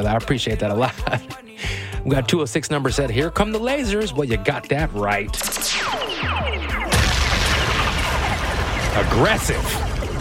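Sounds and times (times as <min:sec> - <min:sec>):
speech: 0:00.0 - 0:06.6, 0:09.0 - 0:09.8
falling whistling tones of a bomb sound effect: 0:05.4 - 0:06.9
bomb explosion sound effect: 0:06.8 - 0:10.1.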